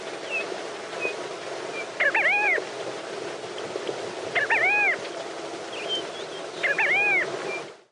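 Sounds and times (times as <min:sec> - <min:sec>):
Namaqua sandgrouse bubbling call: 0:00.0 - 0:02.7, 0:04.3 - 0:07.6.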